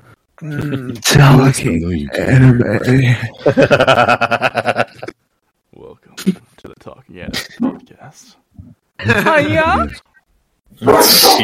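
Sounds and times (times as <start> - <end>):
speech: 0.4 - 5.1, 9.0 - 10.0, 10.8 - 11.4
laughter: 3.3 - 5.2
dog barking: 10.8 - 11.4.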